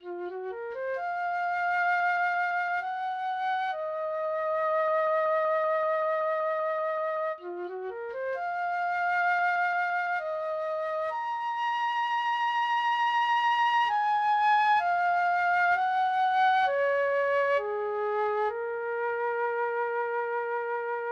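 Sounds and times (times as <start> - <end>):
flute: 0.0 - 21.1.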